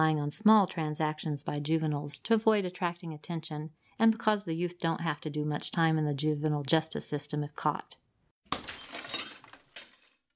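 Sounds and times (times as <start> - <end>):
speech: 0.0 - 8.0
glass shattering: 8.5 - 10.3
tinkling glass shards: 8.5 - 10.3.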